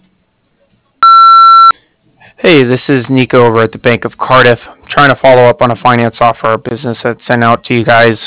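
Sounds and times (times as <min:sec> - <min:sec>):
answering machine beep: 0:01.0 - 0:01.8
speech: 0:02.4 - 0:08.2.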